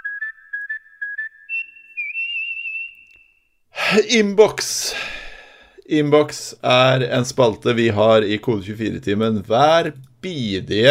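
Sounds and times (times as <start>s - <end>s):
person whistling a tune: 0.0s - 3.5s
speech: 3.9s - 5.2s, 5.9s - 10.8s.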